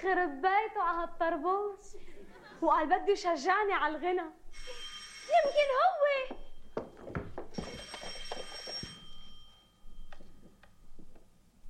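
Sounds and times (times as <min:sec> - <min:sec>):
speech: 0:00.0 - 0:06.4
laughter: 0:02.0 - 0:02.8
telephone bell ringing: 0:04.5 - 0:10.5.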